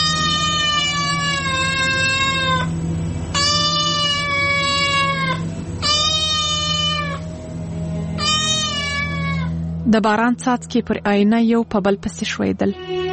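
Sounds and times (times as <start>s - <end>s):
cat meowing from outside at a window: 0.0s - 2.7s, 3.4s - 7.2s, 8.2s - 9.6s
speech: 9.9s - 13.0s.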